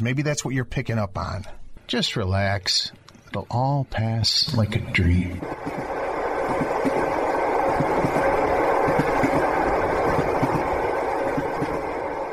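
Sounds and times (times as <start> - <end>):
speech: 0.0 - 6.6
passenger train riding on rails in Russia: 5.4 - 12.3.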